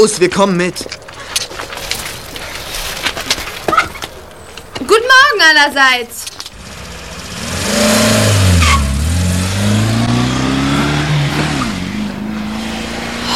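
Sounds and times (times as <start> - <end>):
speech: 0.0 - 1.4, 5.4 - 6.2
car engine roaring as the car drives away fast: 6.3 - 13.3.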